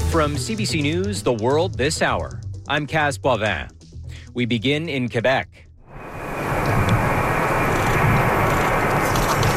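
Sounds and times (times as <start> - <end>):
speech: 0.1 - 3.8, 4.4 - 5.6
passenger plane landing at an airport: 5.8 - 9.5.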